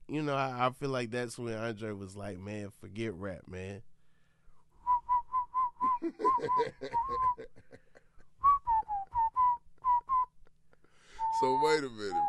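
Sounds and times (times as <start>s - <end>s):
speech: 0.1s - 3.9s, 6.0s - 7.8s, 11.4s - 12.2s
person whistling a bright melody imitating a flute: 4.8s - 7.5s, 8.4s - 10.3s, 11.1s - 12.2s
laughter: 6.0s - 8.2s.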